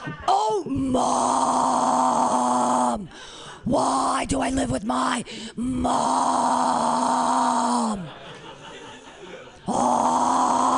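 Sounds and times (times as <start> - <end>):
laughter: 0.0 - 0.6, 7.7 - 10.2
speech: 0.0 - 1.7, 3.0 - 8.2
voice imitating a death metal growl: 0.8 - 3.1, 5.6 - 8.1, 9.6 - 10.7.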